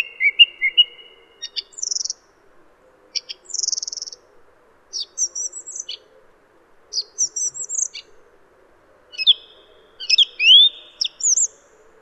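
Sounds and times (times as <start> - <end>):
song thrush singing varied loud phrases: 0.0 - 2.2, 3.1 - 4.2, 4.9 - 6.0, 6.9 - 8.1, 9.1 - 11.6.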